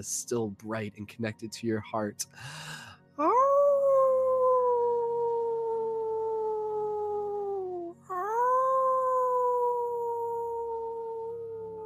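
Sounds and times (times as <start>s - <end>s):
speech: 0.0s - 3.6s
person howling like a wolf: 3.2s - 11.8s.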